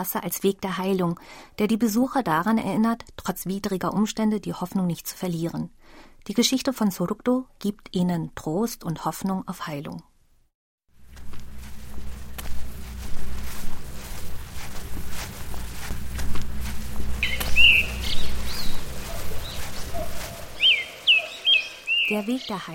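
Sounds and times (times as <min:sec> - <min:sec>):
speech: 0:00.0 - 0:10.1, 0:22.1 - 0:22.7
footsteps crunching: 0:10.9 - 0:22.1
soft rustle of leaves: 0:10.9 - 0:22.7
birds chirping and tweeting: 0:15.6 - 0:22.7.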